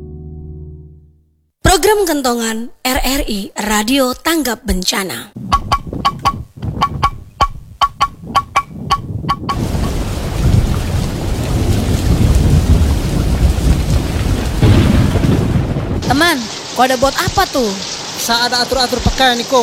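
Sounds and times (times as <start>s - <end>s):
speech: 1.8s - 5.6s, 16.3s - 19.6s
sharp rhythmic chirping bursts: 5.4s - 9.6s
heavy rain roaring: 9.5s - 19.6s.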